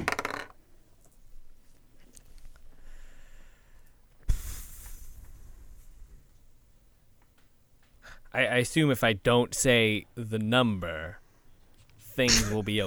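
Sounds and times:
dice rolling on a hard tabletop: 0:00.0 - 0:00.6
speech: 0:08.4 - 0:11.2, 0:12.2 - 0:12.8.

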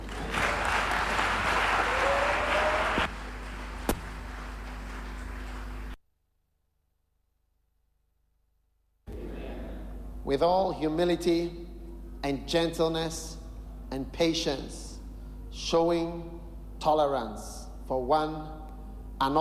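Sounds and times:
audience applause: 0:00.0 - 0:05.9
sharp knock: 0:03.9 - 0:04.2
speech: 0:10.3 - 0:11.6, 0:12.2 - 0:14.9, 0:15.5 - 0:18.6, 0:19.2 - 0:19.3.

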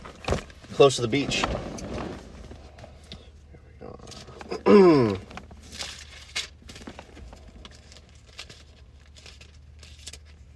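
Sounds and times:
Bible pages turning: 0:00.0 - 0:02.9, 0:05.2 - 0:10.5
speech: 0:00.8 - 0:01.7, 0:04.7 - 0:05.2.

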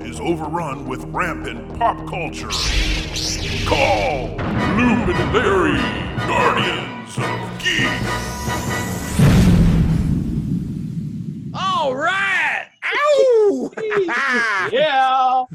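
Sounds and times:
speech: 0:00.2 - 0:09.3
loud explosion with deep rumble: 0:08.8 - 0:12.3
laughter: 0:12.8 - 0:15.5.

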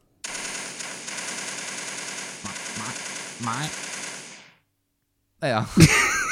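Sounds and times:
voice imitating machine gun fire during playacted shooting: 0:02.4 - 0:04.0
speech: 0:02.8 - 0:03.8, 0:05.4 - 0:06.2
laughter: 0:05.7 - 0:06.2.

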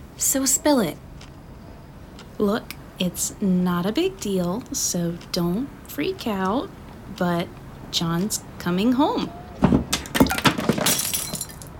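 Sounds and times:
speech: 0:00.2 - 0:01.1, 0:02.4 - 0:09.8
drinking glass shattering: 0:09.6 - 0:11.7
knocks and clinks: 0:09.6 - 0:11.7
scattering glass shards tinkling: 0:09.9 - 0:11.7.

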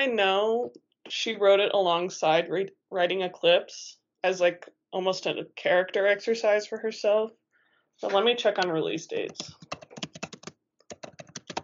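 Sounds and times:
speech: 0:00.0 - 0:07.4, 0:08.0 - 0:09.7
typing on a computer keyboard: 0:09.2 - 0:11.6.

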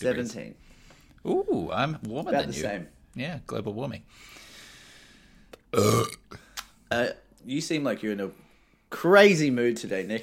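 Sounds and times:
speech: 0:00.0 - 0:04.4, 0:05.7 - 0:10.2
breaths: 0:00.6 - 0:01.2, 0:04.1 - 0:05.6, 0:08.3 - 0:08.9
deep guttural burp: 0:05.7 - 0:07.2.

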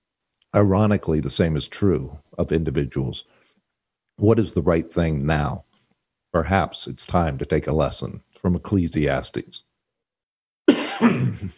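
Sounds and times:
speech: 0:00.5 - 0:03.4, 0:04.2 - 0:05.7, 0:06.3 - 0:09.7, 0:11.0 - 0:11.5
person coughing harshly: 0:10.7 - 0:11.5.

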